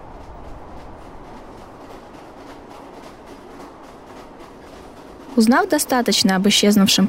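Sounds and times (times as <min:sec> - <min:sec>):
electric commuter train rumbling on rails heard from inside the carriage: 0:00.0 - 0:07.0
speech: 0:05.4 - 0:07.0.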